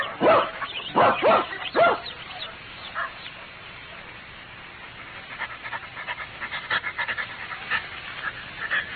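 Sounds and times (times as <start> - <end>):
dog barking: 0.0 - 2.2, 3.0 - 3.2
dog panting: 4.8 - 8.9.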